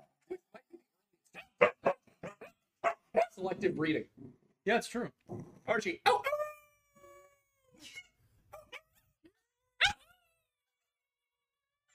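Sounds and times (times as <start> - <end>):
dog barking: 1.4 - 3.4, 9.8 - 10.0
speech: 3.4 - 6.2.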